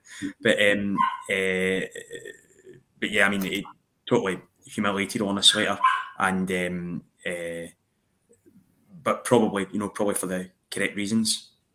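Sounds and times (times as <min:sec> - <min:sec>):
speech: 0:00.2 - 0:07.8, 0:09.0 - 0:11.5
dog at the door whining and yipping to get into a house: 0:01.0 - 0:01.3, 0:05.6 - 0:06.2.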